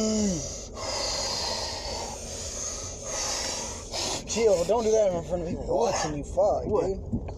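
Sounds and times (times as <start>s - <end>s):
person gasping and wheezing for breath after smoking: 0.0s - 4.3s
brief strained vocal rasp: 0.0s - 6.4s
speech: 4.4s - 7.3s.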